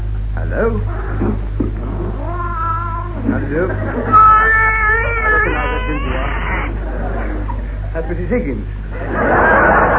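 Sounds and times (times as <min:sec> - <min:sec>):
steady low hum: 0:00.0 - 0:09.9
speech: 0:00.5 - 0:01.9, 0:03.2 - 0:04.5, 0:05.8 - 0:06.9, 0:07.9 - 0:09.8
several cats meowing and caterwauling: 0:01.8 - 0:06.8
laughter: 0:03.2 - 0:08.3, 0:08.9 - 0:09.9.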